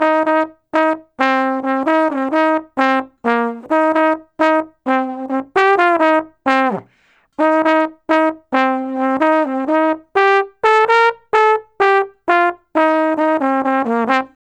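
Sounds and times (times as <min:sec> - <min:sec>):
traditional trombone solo: 0:00.0 - 0:14.4.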